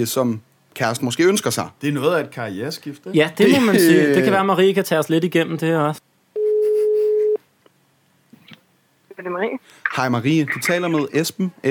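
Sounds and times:
speech: 0:00.0 - 0:06.1, 0:09.2 - 0:11.6
laughter: 0:03.4 - 0:04.4
telephone ringback tone of an outgoing call: 0:06.4 - 0:07.4.

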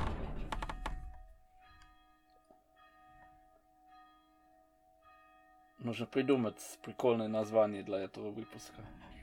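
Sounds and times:
dull thuds: 0:00.0 - 0:01.3
church bell ringing: 0:01.0 - 0:09.2
speech: 0:05.8 - 0:09.2.

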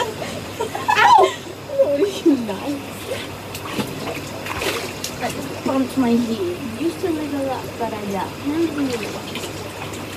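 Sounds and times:
laughter: 0:00.0 - 0:02.1
water splashing into a person's ear: 0:02.0 - 0:10.1
speech: 0:02.3 - 0:03.5, 0:05.3 - 0:09.5.

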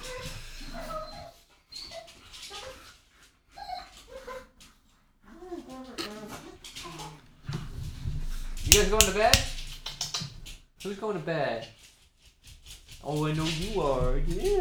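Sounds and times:
several dogs whining and whimpering: 0:00.0 - 0:04.6, 0:05.2 - 0:07.6
speech: 0:08.8 - 0:09.5, 0:10.8 - 0:11.8, 0:13.0 - 0:14.5.

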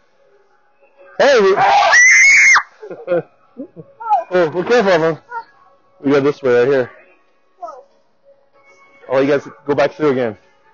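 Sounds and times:
speech: 0:01.2 - 0:01.9, 0:03.1 - 0:05.3, 0:06.0 - 0:07.0, 0:09.1 - 0:10.4
child screaming: 0:01.6 - 0:02.7.

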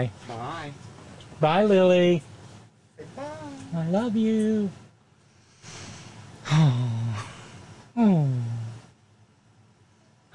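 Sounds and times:
speech: 0:00.0 - 0:02.3, 0:03.7 - 0:04.8, 0:06.5 - 0:07.0, 0:08.0 - 0:08.5
breathy intake and sharp voiced gasps sliding downward in pitch: 0:05.7 - 0:08.5.

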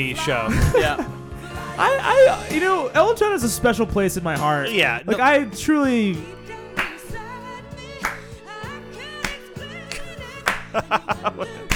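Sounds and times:
laughter: 0:00.0 - 0:01.2, 0:09.9 - 0:11.7
speech: 0:00.0 - 0:01.2, 0:01.8 - 0:06.4, 0:10.8 - 0:11.7
tuneful music: 0:00.0 - 0:11.7
hand clapping: 0:06.7 - 0:07.2, 0:08.0 - 0:08.5, 0:09.2 - 0:11.7.

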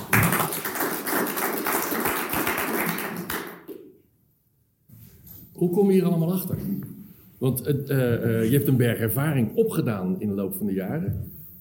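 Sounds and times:
audience applauding a speaker after a talk: 0:00.0 - 0:03.7
speech: 0:05.6 - 0:11.4.

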